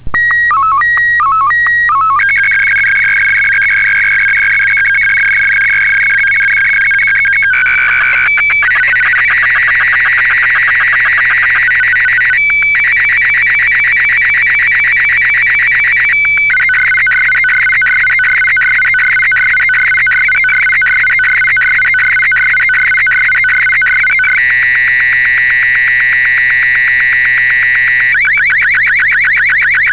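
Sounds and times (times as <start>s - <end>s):
SSTV AVT mode image signal: 0.0s - 29.9s
radio interference QRM: 7.0s - 11.6s.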